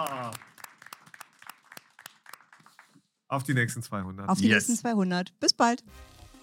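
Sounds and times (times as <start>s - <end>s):
small group clapping irregularly: 0.0s - 3.1s
speech: 3.3s - 6.2s.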